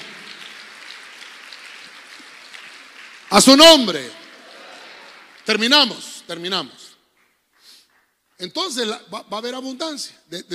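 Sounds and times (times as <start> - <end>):
audience at a church service applauding: 0.0 - 6.4
speech: 3.3 - 4.2, 5.5 - 6.8, 8.4 - 10.5.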